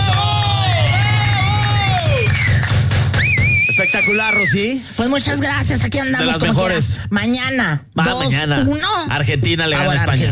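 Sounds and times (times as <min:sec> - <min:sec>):
crowd applauding for the staff: 0:00.0 - 0:04.6
speech: 0:04.4 - 0:10.2.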